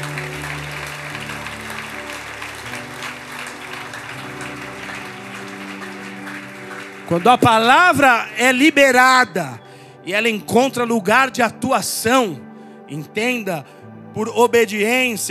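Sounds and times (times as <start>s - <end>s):
large crowd applauding: 0.0s - 9.0s
sustained keyboard chords: 0.0s - 15.2s
speech: 7.1s - 15.2s.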